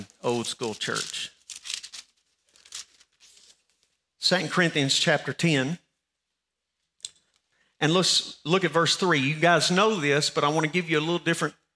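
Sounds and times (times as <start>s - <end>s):
speech: 0.0s - 1.4s, 4.2s - 5.8s, 7.8s - 11.6s
Bible pages being turned: 0.3s - 4.0s.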